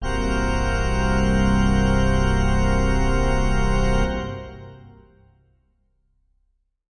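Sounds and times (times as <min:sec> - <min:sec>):
heavy pipe organ synth keys: 0:00.0 - 0:05.2.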